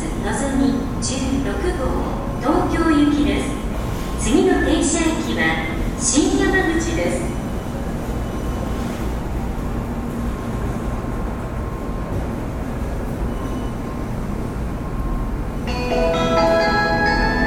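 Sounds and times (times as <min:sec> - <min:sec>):
bullet train rumble and hiss at a station platform: 0:00.0 - 0:17.4
high chiming melody at a station platform: 0:15.7 - 0:17.4.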